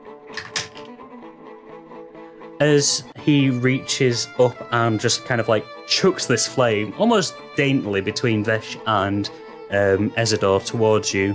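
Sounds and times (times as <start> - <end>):
dice rolled at a tabletop role-playing game: 0.4 - 0.9
speech: 2.6 - 11.3.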